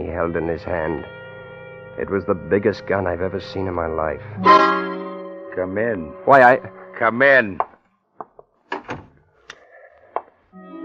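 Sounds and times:
speech: 0.0s - 1.2s, 2.0s - 4.9s, 5.6s - 7.7s
low tonal hum: 0.0s - 7.6s
wooden door closing with knocks, creak and latch: 8.7s - 9.2s.

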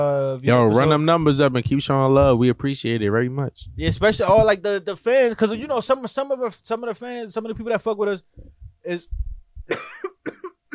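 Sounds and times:
speech: 0.0s - 10.1s
harsh raspy smoker's cough: 9.6s - 10.7s.

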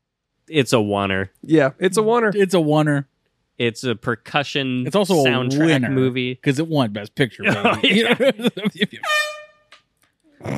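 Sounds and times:
speech: 0.5s - 9.2s
laughter: 4.5s - 6.1s, 7.0s - 9.1s
air horn blasts: 9.0s - 9.6s.

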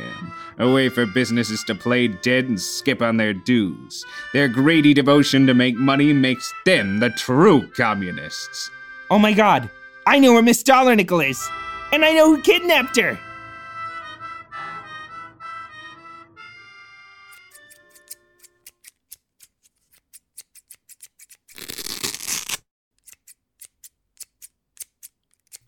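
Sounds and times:
speech: 0.6s - 13.3s
scissors cutting fabric into strips: 17.3s - 25.6s.

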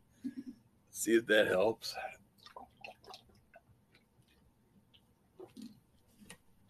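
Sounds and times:
speech: 1.0s - 2.2s
spilled water dripping: 2.3s - 6.6s
soft gulping swallows: 2.4s - 3.7s, 5.4s - 5.9s
wet clicks of drinking: 2.4s - 6.6s.

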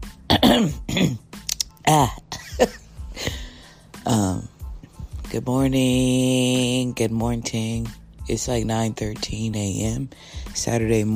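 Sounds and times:
throat clearing with gravelly harrumphs: 0.3s - 1.3s
speech: 0.6s - 1.2s, 1.9s - 2.8s, 5.4s - 11.1s.

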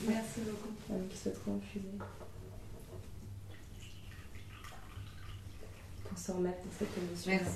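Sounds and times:
speech: 0.0s - 3.1s, 6.1s - 7.5s
tea poured steadily into a cup: 3.5s - 6.2s.

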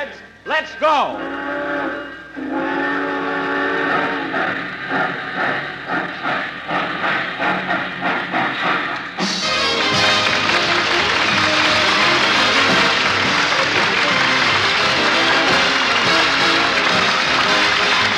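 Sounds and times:
speech: 0.4s - 1.5s
loud sustained steam train whistle: 1.1s - 4.6s, 9.2s - 18.1s
steam locomotive chugging and clattering while pulling away: 1.1s - 18.1s.

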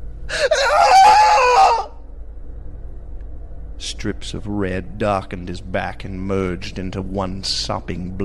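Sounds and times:
man's piercing scream in a cellar: 0.3s - 2.0s
speech: 4.0s - 8.2s.

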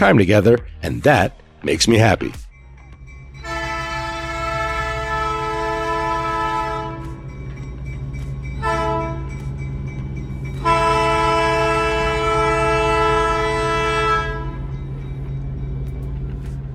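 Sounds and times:
speech: 0.0s - 2.4s
steam locomotive rumbling: 0.0s - 16.7s
narrow gauge steam train whistle in downtown Durango Colorado: 3.4s - 7.2s, 8.6s - 9.3s, 10.6s - 14.7s.

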